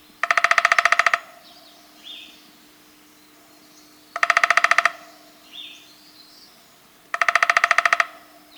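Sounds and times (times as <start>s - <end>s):
faint bird calls: 0.0s - 8.5s
downy woodpecker drumming: 0.2s - 1.5s, 4.1s - 5.4s, 7.1s - 8.3s.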